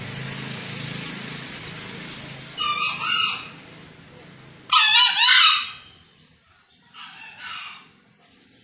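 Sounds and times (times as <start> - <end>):
green junglefowl roosters crowing: 2.5 - 3.8, 4.7 - 6.0, 6.9 - 8.1.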